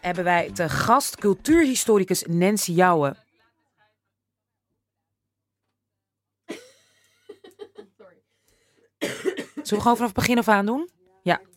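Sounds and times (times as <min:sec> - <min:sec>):
speech: 0:00.0 - 0:03.2, 0:09.7 - 0:11.5
loud harsh cough: 0:06.5 - 0:08.1, 0:09.0 - 0:09.9.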